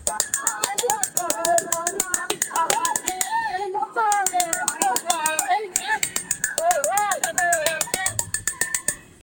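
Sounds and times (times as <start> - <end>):
tribal village sounds in Africa: 0.0 - 9.2.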